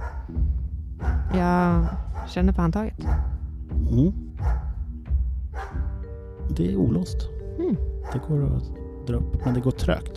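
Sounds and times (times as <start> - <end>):
dog barking behind a closed door: 0.0 - 0.4, 1.0 - 2.4, 3.0 - 3.5, 4.4 - 4.8, 5.5 - 6.0
speech: 1.3 - 4.6, 6.5 - 10.1.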